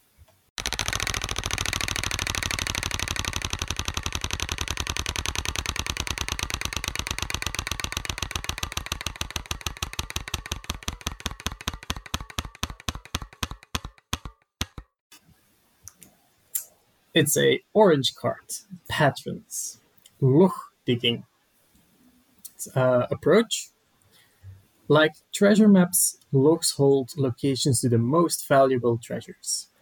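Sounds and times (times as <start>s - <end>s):
prize wheel spinning and clicking: 0.6s - 14.8s
speech: 17.2s - 21.3s, 22.6s - 23.8s, 24.9s - 29.7s.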